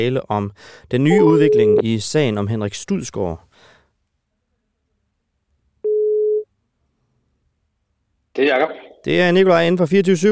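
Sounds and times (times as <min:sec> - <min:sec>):
speech: 0:00.0 - 0:03.5, 0:08.4 - 0:10.3
electronic telephone ringing tone of an outgoing call: 0:01.2 - 0:01.8, 0:05.8 - 0:06.4.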